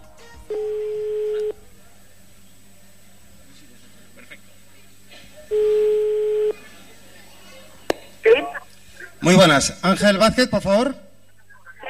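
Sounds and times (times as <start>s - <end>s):
telephone ringback tones on a call line: 0.5s - 1.6s, 5.5s - 6.6s
speech: 9.3s - 11.0s.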